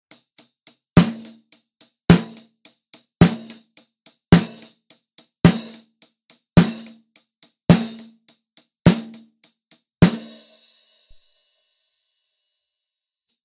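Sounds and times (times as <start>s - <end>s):
snare drum recorded through a Shure SM7B microphone: 0.1s - 10.4s.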